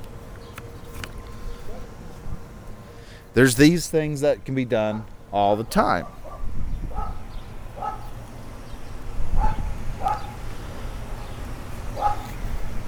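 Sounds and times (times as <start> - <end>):
speech: 3.4 - 6.2
pet dog woofing and yipping: 6.0 - 8.1, 9.4 - 10.4, 12.0 - 12.4.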